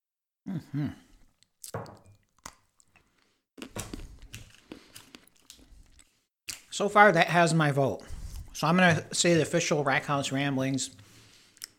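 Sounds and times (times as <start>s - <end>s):
speech: 0.5s - 1.1s, 1.7s - 2.0s, 6.8s - 11.0s
wet chewing of dark chocolate with sea salt caramel: 1.2s - 6.7s.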